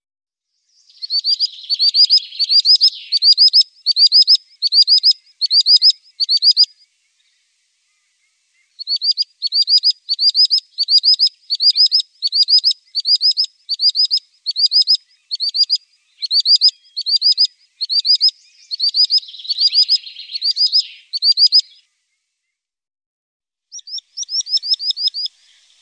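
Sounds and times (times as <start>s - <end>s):
common sandpiper calling in shrill high whistled notes: 0.9s - 6.8s, 8.8s - 21.8s, 23.7s - 25.8s.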